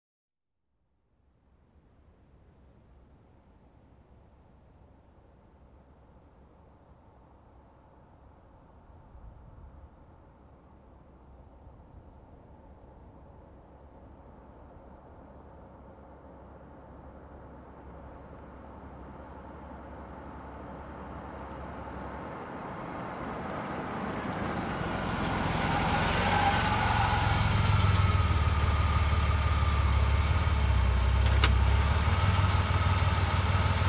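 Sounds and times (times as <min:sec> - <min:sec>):
car engine shutting off: 0:19.1 - 0:33.8
car parking: 0:24.4 - 0:33.8.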